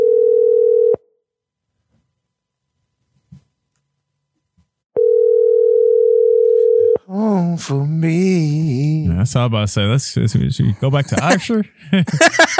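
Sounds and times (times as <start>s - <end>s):
telephone tone while calling a number: 0.0s - 1.0s, 5.0s - 7.0s
speech: 7.1s - 12.5s
laughter: 10.2s - 12.5s.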